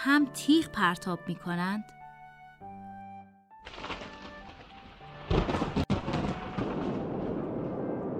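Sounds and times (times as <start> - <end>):
speech: 0.0 - 2.0
thunder rumbling: 3.7 - 8.1.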